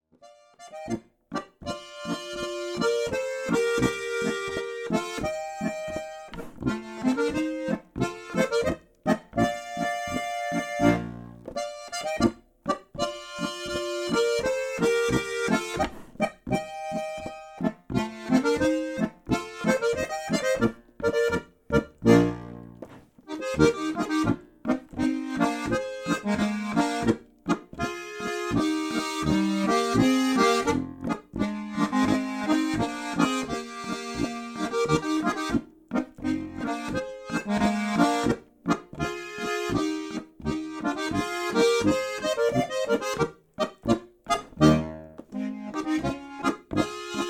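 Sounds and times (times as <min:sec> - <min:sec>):
Boarischer folk dance music: 0:00.5 - 0:47.2.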